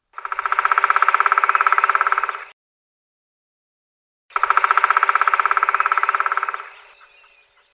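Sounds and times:
black woodpecker drumming: 0:00.0 - 0:02.5, 0:04.3 - 0:07.7.

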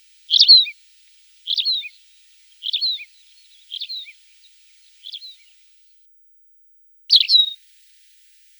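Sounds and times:
tawny pipit singing: 0:00.3 - 0:00.8, 0:01.4 - 0:05.6, 0:07.1 - 0:07.6.

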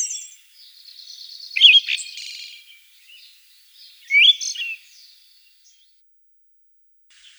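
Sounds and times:
Siberian thrush singing: 0:01.0 - 0:05.1.

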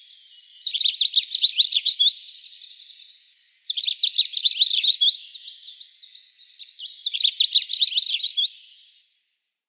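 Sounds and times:
long-tailed rosefinch twittering song: 0:00.0 - 0:09.2.

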